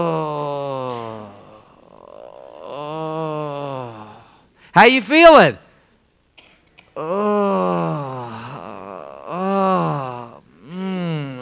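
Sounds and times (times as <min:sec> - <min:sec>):
person groaning in pain: 0:00.0 - 0:04.3, 0:07.0 - 0:11.3
speech: 0:04.8 - 0:05.6.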